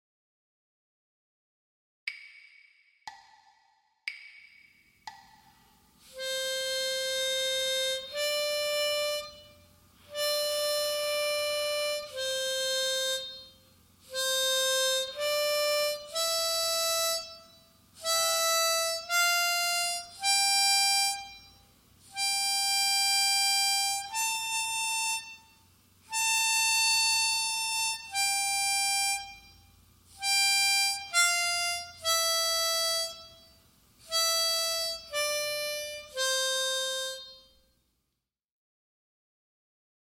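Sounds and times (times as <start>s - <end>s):
bagpipe sight-reading exercises: 6.1s - 37.6s.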